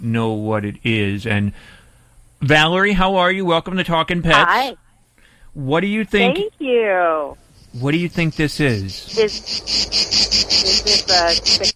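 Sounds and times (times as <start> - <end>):
speech: 0.0 - 1.8, 2.4 - 4.8, 5.6 - 11.7
cicadas buzzing: 7.4 - 11.7.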